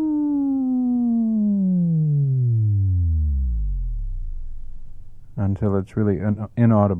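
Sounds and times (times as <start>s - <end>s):
synthetic sine-wave tone from an oscillator gliding in pitch: 0.0s - 5.4s
speech: 5.4s - 6.9s.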